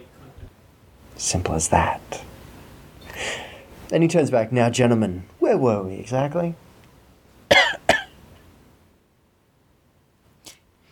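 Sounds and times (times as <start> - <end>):
speech: 1.2 - 2.3, 3.9 - 6.6
sharp coughs: 7.5 - 8.2.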